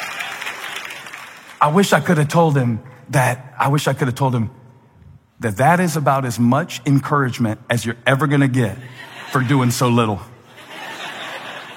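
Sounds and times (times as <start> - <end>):
audience applause: 0.0 - 1.6
man talking loudly: 1.6 - 4.6, 5.4 - 10.4
speech: 1.6 - 4.6, 5.4 - 10.3
laughter: 8.8 - 11.7.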